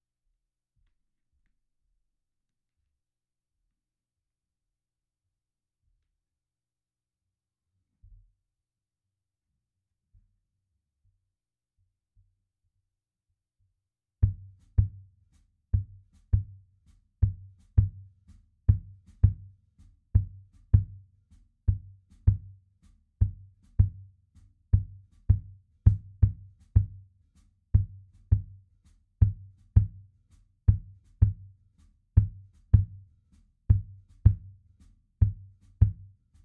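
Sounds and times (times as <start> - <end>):
kick drum: 14.2 - 36.4
percussion intro: 14.2 - 36.4.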